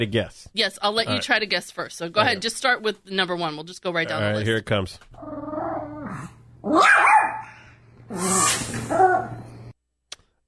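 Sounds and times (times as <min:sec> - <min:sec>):
speech: 0:00.0 - 0:07.0, 0:08.1 - 0:09.4
dog barking and growling excitedly during play: 0:05.2 - 0:09.4.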